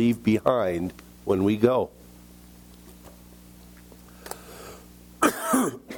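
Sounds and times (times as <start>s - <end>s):
speech: 0.0s - 2.0s
single forceful cough with rough throaty tail: 5.2s - 5.9s.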